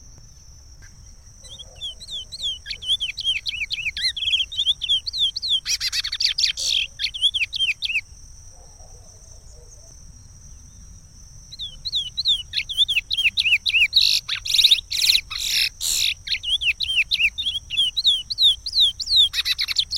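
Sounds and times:
constant high-pitched tone: 0.0 - 19.9
chestnut-bellied seed finch singing slurred whistles: 1.4 - 8.1, 11.5 - 19.9.

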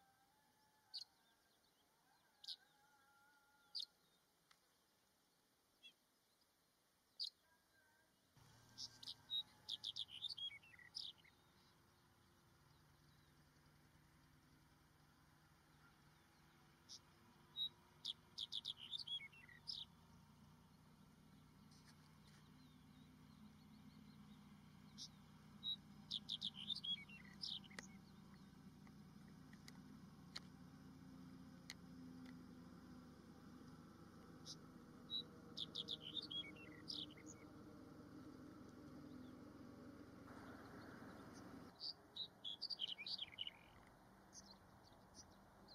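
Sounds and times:
black-headed bunting singing: 8.4 - 13.8, 14.8 - 44.6.

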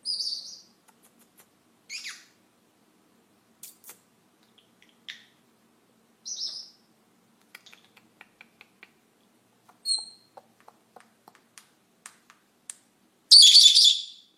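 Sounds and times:
Senegal parrot whistled notes: 13.3 - 14.2.

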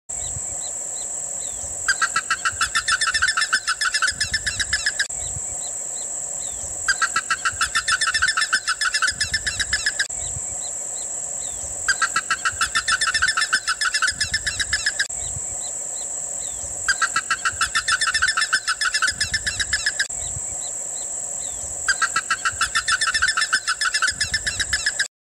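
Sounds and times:
Theristicus caudatus ibis calling: 0.2 - 25.1.

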